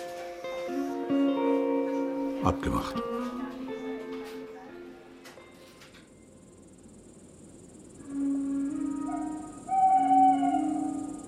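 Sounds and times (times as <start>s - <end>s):
crickets chirping at night: 0.0s - 11.2s
speech: 2.4s - 3.4s
owl hooting at night: 7.8s - 11.2s.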